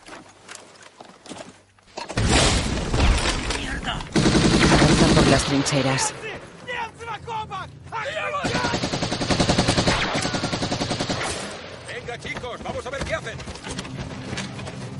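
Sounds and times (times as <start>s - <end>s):
scattered gunshots in a WWII trench battle: 2.2s - 6.3s, 8.4s - 12.0s
automatic gunfire in a WWII trench battle: 4.1s - 5.9s, 8.4s - 11.7s
voices calling out in a WWII trench battle: 4.7s - 8.9s
speech: 5.4s - 6.5s, 12.5s - 14.0s.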